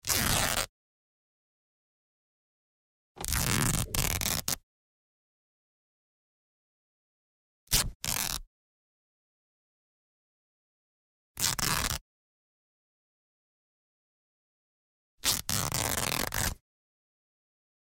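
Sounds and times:
T-shirt fabric being torn: 0:00.0 - 0:00.7, 0:03.2 - 0:04.6, 0:07.7 - 0:08.4, 0:11.4 - 0:12.0, 0:15.2 - 0:16.6.

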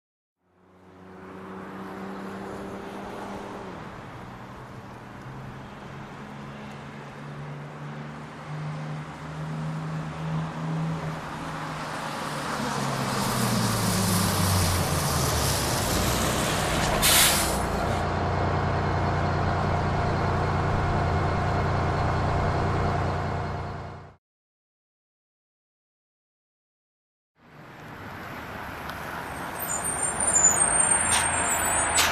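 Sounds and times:
bus approaching and stopping: 0:00.4 - 0:24.2, 0:27.4 - 0:32.1
bus exhaust pipe: 0:13.0 - 0:24.1, 0:29.6 - 0:32.1.

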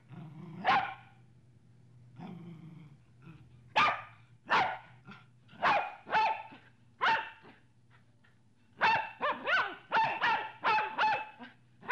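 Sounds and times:
medium-sized dog barking: 0:00.6 - 0:01.1, 0:03.8 - 0:04.9, 0:05.6 - 0:07.6, 0:08.8 - 0:11.9.

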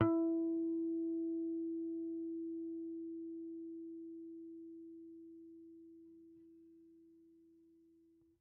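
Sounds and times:
clean electric guitar harmonics on E3: 0:00.0 - 0:03.6.

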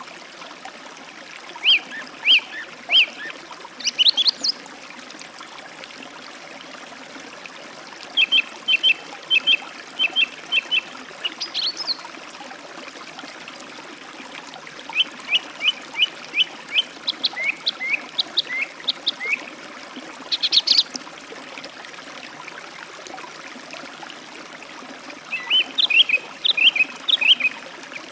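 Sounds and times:
trickling forest stream: 0:00.0 - 0:28.1
song thrush singing by a forest stream: 0:01.6 - 0:04.6, 0:08.2 - 0:12.0, 0:14.9 - 0:19.4, 0:20.3 - 0:21.0, 0:25.3 - 0:28.1.

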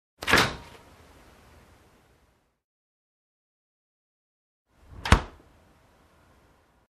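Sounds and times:
refrigerator door opening and closing: 0:00.2 - 0:00.8, 0:04.9 - 0:05.4.

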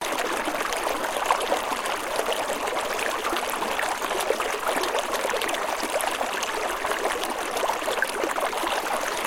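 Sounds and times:
water babbling in a small stream: 0:00.0 - 0:09.2.

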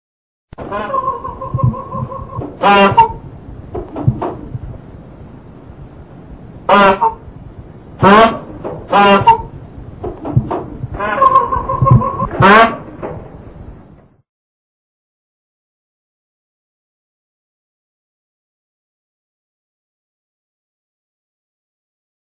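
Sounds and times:
gander calling: 0:00.6 - 0:04.6, 0:06.7 - 0:07.3, 0:08.0 - 0:09.5, 0:10.2 - 0:13.0.

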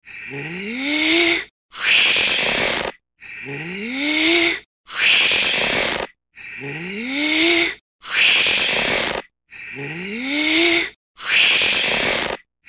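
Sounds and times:
balloon being inflated comically: 0:00.8 - 0:03.0, 0:04.0 - 0:06.2, 0:07.1 - 0:12.4.

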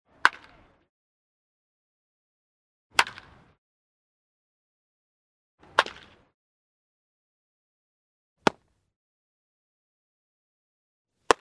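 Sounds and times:
clean baseball hit: 0:03.0 - 0:03.4, 0:05.6 - 0:06.2, 0:08.4 - 0:08.8.

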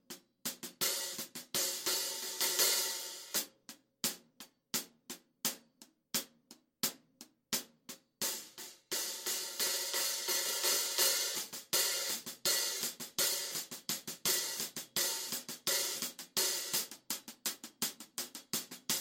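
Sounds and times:
drum cymbals at a soundcheck: 0:00.5 - 0:03.5, 0:08.2 - 0:19.0.

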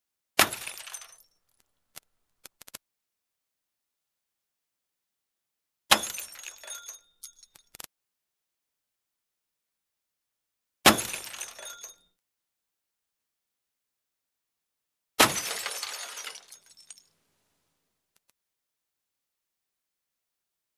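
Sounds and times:
small accident crash of glass and metal: 0:00.4 - 0:01.4, 0:05.9 - 0:07.6, 0:10.9 - 0:12.0, 0:15.2 - 0:17.2.

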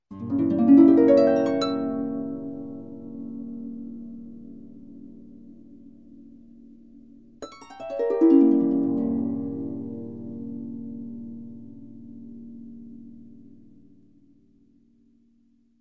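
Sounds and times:
harp seventh chord arpeggio up and down: 0:00.1 - 0:04.8, 0:07.4 - 0:11.8.

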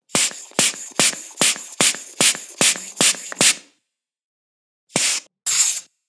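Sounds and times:
manual air pump: 0:00.1 - 0:03.6, 0:05.0 - 0:05.9.

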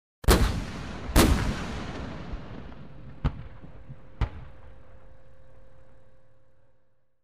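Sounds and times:
two tanks firing: 0:00.3 - 0:04.6.

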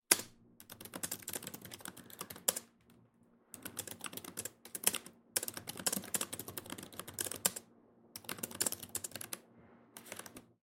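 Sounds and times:
typing on a computer keyboard: 0:00.1 - 0:02.7, 0:03.6 - 0:07.6, 0:08.2 - 0:09.4, 0:10.0 - 0:10.5.

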